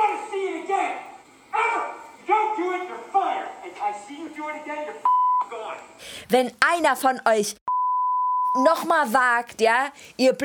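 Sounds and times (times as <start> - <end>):
man shouting angrily on a film set: 0.0 - 5.8
censorship bleep over swearing: 5.0 - 5.5, 7.7 - 8.8
speech: 6.3 - 7.7, 8.5 - 10.4.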